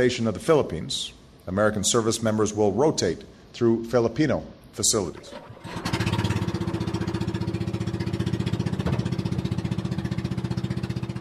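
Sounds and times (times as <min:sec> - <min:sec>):
speech: 0:00.0 - 0:05.9
small fishing boat engine chugging: 0:05.4 - 0:11.2.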